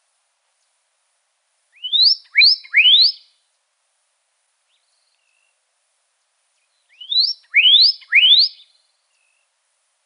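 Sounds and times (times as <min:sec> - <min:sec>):
Pyrrhuloxia whistling rising notes in Arizona: 0:01.8 - 0:03.2, 0:06.9 - 0:08.6.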